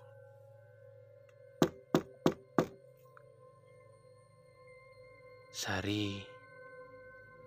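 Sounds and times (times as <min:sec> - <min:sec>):
faint steady hum: 0:00.0 - 0:07.4
knocking on a bedroom door: 0:01.6 - 0:02.8
speech: 0:05.6 - 0:06.3.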